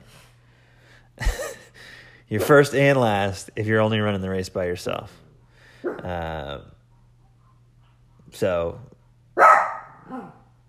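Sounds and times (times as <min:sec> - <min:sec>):
speech: 0:02.3 - 0:05.2, 0:05.8 - 0:06.7, 0:08.3 - 0:08.9
dog barking: 0:05.8 - 0:06.2, 0:09.4 - 0:10.5.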